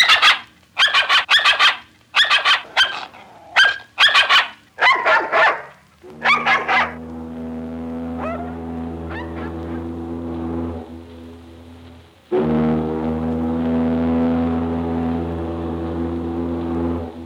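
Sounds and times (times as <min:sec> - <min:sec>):
dog barking with yappy yelps: 0:00.0 - 0:07.0, 0:08.2 - 0:09.8
steady humming tone: 0:01.9 - 0:17.2
ocean liner horn blasts: 0:06.0 - 0:17.2.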